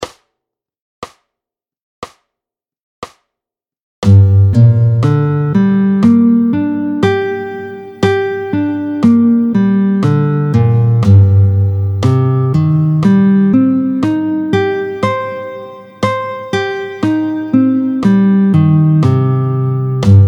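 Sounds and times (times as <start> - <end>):
minor arpeggios in G minor and C minor played with a pick: 4.1 - 20.2.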